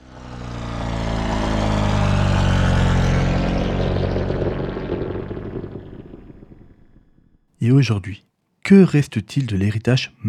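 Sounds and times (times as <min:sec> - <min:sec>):
propeller airplane rotary engine running: 0:00.0 - 0:07.5
speech: 0:07.7 - 0:10.2.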